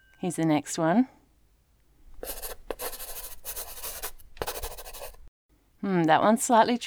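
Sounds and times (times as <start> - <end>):
speech: 0.2 - 1.2, 5.8 - 6.8
pencil scratching across paper in quick uneven strokes: 2.1 - 5.3.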